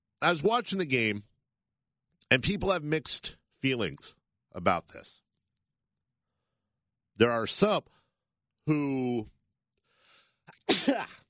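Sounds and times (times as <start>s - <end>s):
speech: 0.2s - 1.3s, 2.3s - 5.2s, 7.2s - 8.0s, 8.7s - 9.4s, 10.7s - 11.2s
person sneezing: 10.5s - 11.2s.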